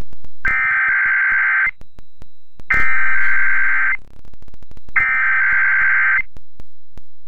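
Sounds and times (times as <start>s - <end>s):
emergency alert system attention tones: 0.5s - 1.8s, 2.7s - 4.0s, 5.0s - 6.3s.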